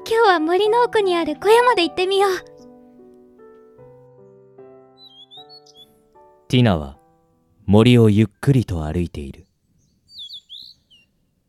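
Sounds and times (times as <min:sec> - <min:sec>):
speech: 0:00.1 - 0:02.5, 0:06.5 - 0:07.0, 0:07.7 - 0:09.5
birds chirping in a forest: 0:02.3 - 0:11.4.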